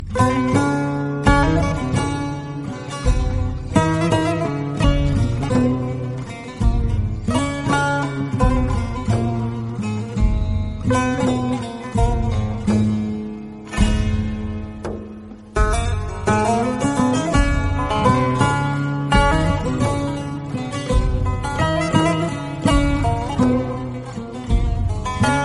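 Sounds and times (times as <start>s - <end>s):
Turkish guitar ringtone: 0.0s - 25.4s.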